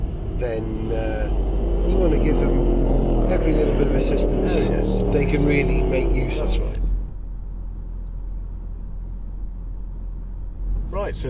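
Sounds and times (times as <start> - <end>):
Mercedes SLS AMG pulling out: 0.0 - 7.2
Mercedes SLS AMG engine idling at Goodwood: 0.0 - 11.2
speech: 0.4 - 6.8.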